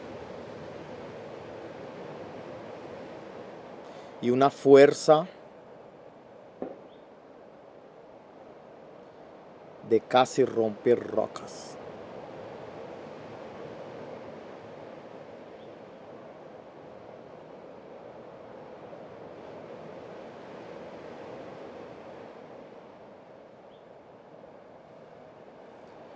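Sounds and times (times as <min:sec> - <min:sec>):
sea waves rumbling in a steady roar: 0:00.0 - 0:06.6, 0:07.3 - 0:26.1
speech: 0:04.2 - 0:05.4, 0:09.9 - 0:11.7.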